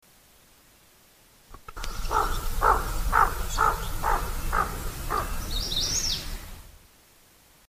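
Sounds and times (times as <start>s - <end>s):
hooded merganser calling: 1.8s - 6.3s.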